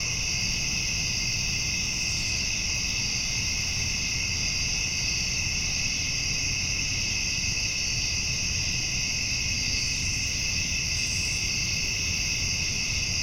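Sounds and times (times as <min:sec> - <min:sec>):
nighttime forest ambience: 0:00.0 - 0:13.2.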